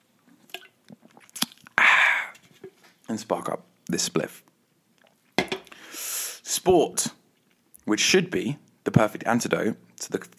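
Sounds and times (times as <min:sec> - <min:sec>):
mouth clicks: 0:00.6 - 0:02.4
person slurping an energy drink: 0:00.9 - 0:02.8
speech: 0:03.1 - 0:04.5, 0:06.6 - 0:07.2, 0:07.9 - 0:10.3.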